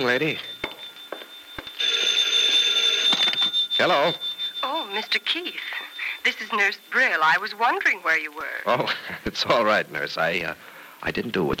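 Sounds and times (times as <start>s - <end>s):
speech: 0.0s - 0.5s, 3.8s - 4.3s, 4.9s - 11.5s
telephone ringing with an electric bell: 0.0s - 9.0s.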